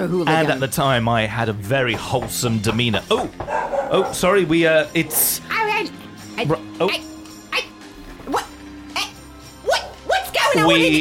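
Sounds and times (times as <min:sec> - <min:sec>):
speech: 0:00.0 - 0:07.1, 0:10.6 - 0:10.9
dog barking: 0:03.4 - 0:04.3, 0:09.6 - 0:10.7.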